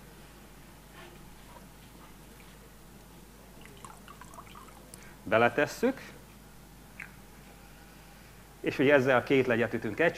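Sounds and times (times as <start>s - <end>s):
low hiss: 0.0s - 10.1s
water trickling into a glass container for a Cartesian diver: 3.6s - 5.0s
speech: 5.3s - 6.2s, 8.6s - 10.1s.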